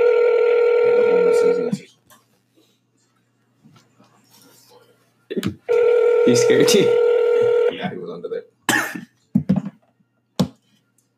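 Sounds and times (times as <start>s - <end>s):
ringback tone of an unanswered outgoing phone call: 0.0s - 1.7s, 5.7s - 7.8s
speech: 6.3s - 7.0s.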